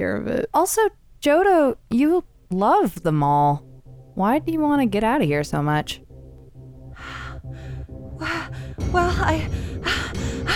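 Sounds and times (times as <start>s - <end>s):
speech: 0.0s - 6.0s, 8.2s - 10.5s
heavy ragged breathing with loud gasping breaths: 6.8s - 10.5s.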